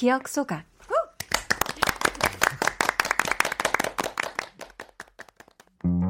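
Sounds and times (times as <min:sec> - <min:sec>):
speech: 0:00.0 - 0:00.9
small group clapping in a studio: 0:01.2 - 0:06.0.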